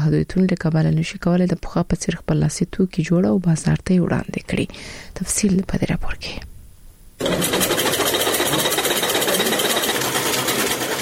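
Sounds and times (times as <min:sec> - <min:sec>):
speech: 0:00.0 - 0:06.5
sewing machines whirring and clattering in a tailoring workshop: 0:07.2 - 0:10.9.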